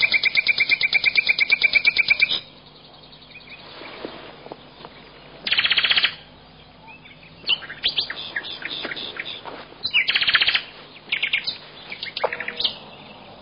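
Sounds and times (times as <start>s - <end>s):
birds twittering with overlapping high chirps: 0.0s - 13.4s.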